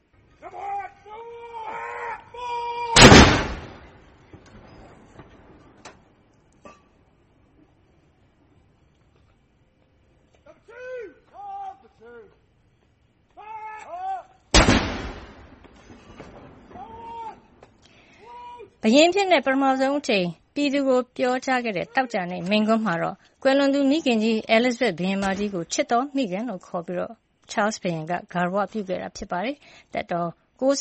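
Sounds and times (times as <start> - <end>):
artillery firing a royal salute: 3.0 - 5.8, 14.5 - 17.1
speech: 18.8 - 30.7.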